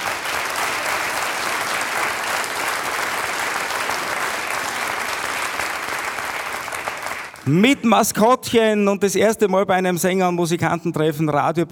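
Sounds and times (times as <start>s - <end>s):
audience applause: 0.0s - 7.6s
speech: 7.5s - 11.6s.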